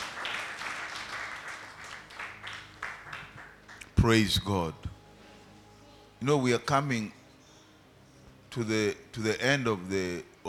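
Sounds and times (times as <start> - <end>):
crowd clapping in applause for the choir: 0.0 - 4.0
speech: 4.0 - 4.9, 6.2 - 7.2, 8.5 - 10.4.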